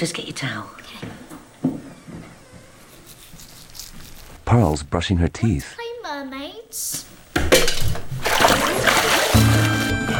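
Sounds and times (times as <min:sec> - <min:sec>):
speech: 0:00.0 - 0:01.3, 0:04.5 - 0:05.8, 0:06.7 - 0:07.1
water splashing and churning in a bath as a child struggles: 0:07.6 - 0:10.0.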